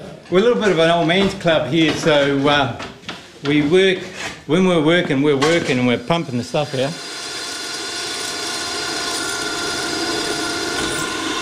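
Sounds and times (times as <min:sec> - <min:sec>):
speech: 0:00.3 - 0:07.0
power drill drilling in a trap-making business: 0:06.2 - 0:11.4.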